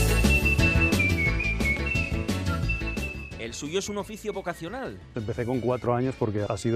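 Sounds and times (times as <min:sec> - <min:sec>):
professional whistler whistling a melody in traditional bilabial style: 0:00.0 - 0:04.9
instrumental music with a rhythmic beat: 0:00.0 - 0:06.6
speech: 0:03.5 - 0:06.7.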